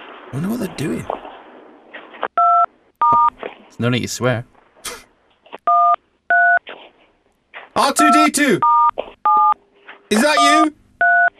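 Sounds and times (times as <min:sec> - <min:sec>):
speech: 0:00.3 - 0:01.3, 0:03.7 - 0:04.5, 0:08.0 - 0:08.7, 0:10.1 - 0:10.8
phone keypad tones from pocket-dialed call: 0:02.4 - 0:03.3, 0:08.0 - 0:09.6, 0:10.2 - 0:11.3.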